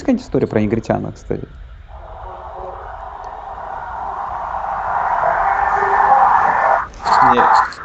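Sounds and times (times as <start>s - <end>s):
speech: 0.1s - 1.6s, 7.3s - 7.8s
crowd roar from American football game highlights on a TV: 1.9s - 7.8s
broadcaster speaking on a TV during American football highlights: 7.0s - 7.8s.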